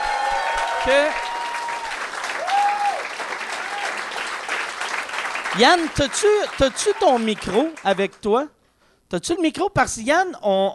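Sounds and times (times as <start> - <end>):
crowd applause: 0.0 - 8.2
speech: 0.8 - 1.2, 5.6 - 10.7.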